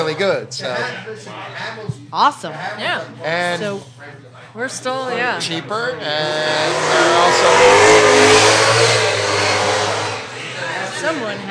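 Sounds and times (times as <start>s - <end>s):
speech: 0.1s - 9.4s, 11.0s - 11.4s
car with loud throaty muffler and revving engine roaring past: 5.0s - 11.4s.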